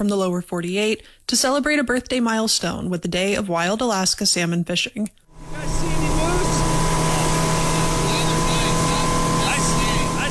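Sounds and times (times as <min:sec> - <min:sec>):
speech: 0:00.0 - 0:05.2
motorboat engine droning on a choppy river: 0:05.3 - 0:10.3.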